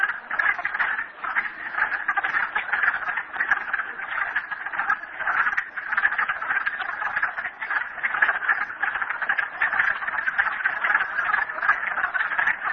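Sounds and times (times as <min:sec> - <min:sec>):
frogs calling in a dense chorus of croaks and trills: 0:00.0 - 0:12.7.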